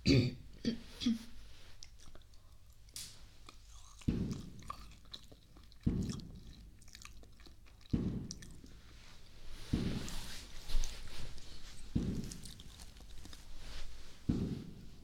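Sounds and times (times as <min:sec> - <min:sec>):
chewing freshly cut dragon fruit: 0:01.6 - 0:14.5.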